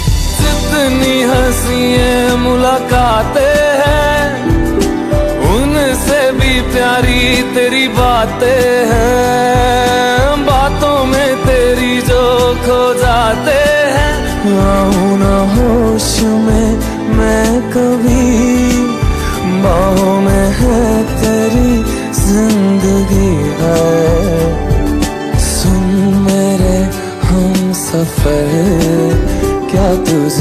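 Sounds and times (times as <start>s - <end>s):
romantic Hindi song ringtone: 0.0s - 30.3s.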